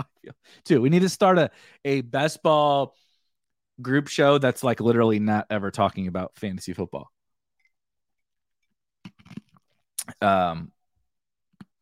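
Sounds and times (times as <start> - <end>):
speech: 0.0 - 3.0, 3.8 - 7.2, 10.1 - 10.8
ice being chewed: 9.1 - 9.8.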